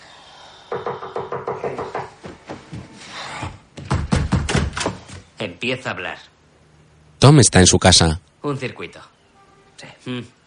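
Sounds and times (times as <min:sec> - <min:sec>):
knocking on a door: 0:00.7 - 0:02.6, 0:03.8 - 0:05.0
speech: 0:05.4 - 0:06.3, 0:07.2 - 0:09.1, 0:09.8 - 0:10.4.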